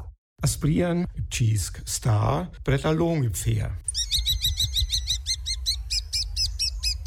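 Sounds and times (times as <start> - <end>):
speech: 0.4 - 4.0
small cavity-nesting bird calling in high chirps: 3.8 - 7.0.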